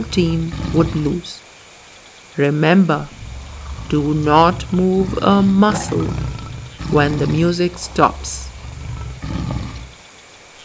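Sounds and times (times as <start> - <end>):
deep rumbling animal roar: 0.0 - 1.3, 3.0 - 10.0
speech: 0.0 - 1.5, 2.4 - 3.2, 3.9 - 8.5.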